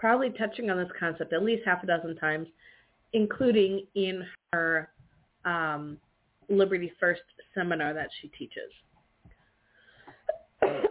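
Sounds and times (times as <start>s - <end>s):
speech: 0.0s - 8.9s, 10.6s - 10.8s
small throat noises: 10.0s - 10.8s
single sharp cough: 10.1s - 10.8s.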